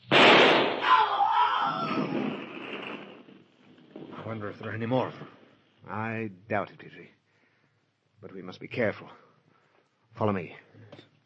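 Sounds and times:
single gunshot fired at a lurking attacker in the dark: 0.0 - 3.3
speech: 4.3 - 7.2, 8.2 - 9.2, 10.2 - 11.1.

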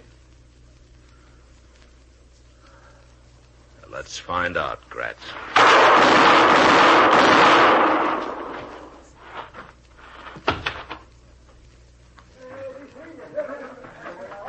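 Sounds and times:
speech: 4.0 - 7.6
loud burst of broad noise: 5.0 - 11.0
gunshots in a western radio-drama showdown: 5.4 - 8.9.

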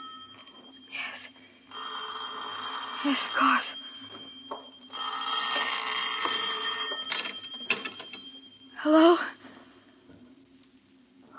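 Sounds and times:
old-fashioned telephone bell ringing in a shrill trill: 0.0 - 8.8
speech: 3.0 - 3.7, 8.8 - 9.2.

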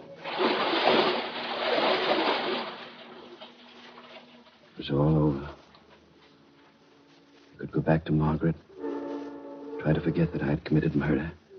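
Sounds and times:
churning, sloshing water: 0.0 - 4.8
heavy splash of something large dropping into water: 0.2 - 3.2
speech: 4.8 - 5.6, 7.8 - 8.7, 9.8 - 11.4.

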